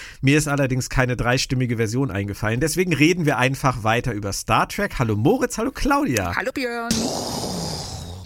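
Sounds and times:
speech: 0.2s - 7.6s
voice imitating thunder with a rumbling growl: 6.9s - 8.2s.

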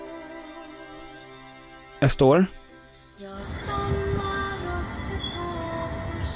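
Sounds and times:
speech: 2.0s - 2.6s
train pulling into station platform rumbling: 3.2s - 6.3s
train metallic wheel squeals: 3.4s - 6.3s.

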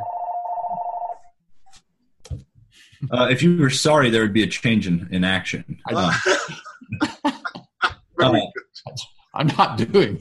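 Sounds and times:
telephone ringing with an electronic trill: 0.0s - 1.3s
speech: 3.0s - 6.6s, 8.2s - 10.2s
laughter: 5.9s - 10.2s.

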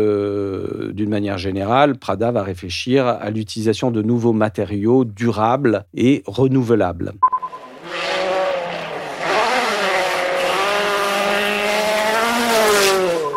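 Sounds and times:
speech: 1.0s - 7.6s
Ford Fiesta WRC rally car engine revving through gears: 7.4s - 13.3s.

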